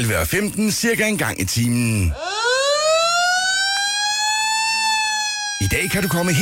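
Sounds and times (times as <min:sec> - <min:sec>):
speech: 0:00.0 - 0:02.5, 0:05.9 - 0:06.3
fire engine siren wailing in a rising tone: 0:02.1 - 0:06.3.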